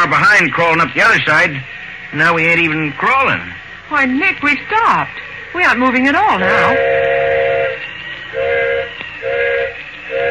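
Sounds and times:
steady hiss of steam: 0.0s - 10.2s
speech: 0.1s - 7.3s
steam locomotive whistle short blasts signalling for a flagman: 6.3s - 10.2s.

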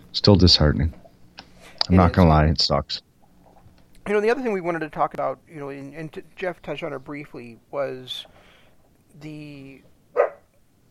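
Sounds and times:
faint hum: 0.0s - 10.8s
speech: 0.2s - 1.0s, 1.9s - 3.1s, 4.1s - 8.4s, 9.2s - 9.9s
single sharp dog bark: 10.2s - 10.5s.

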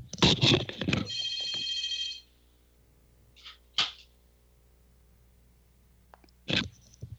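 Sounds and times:
telephone bell ringing in a motel: 0.9s - 2.3s.

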